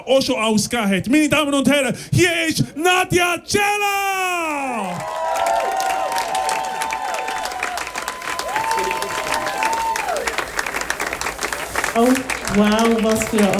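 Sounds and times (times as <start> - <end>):
speech: 0.0 - 5.8, 12.0 - 13.5
audience cheering voices: 3.8 - 13.5
large audience applauding: 4.8 - 13.5.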